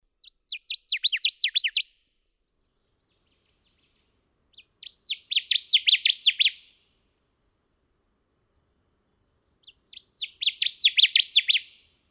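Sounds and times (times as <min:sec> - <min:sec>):
bird calling in bursts of sharp chirping notes: 0:00.1 - 0:07.0, 0:09.2 - 0:12.0.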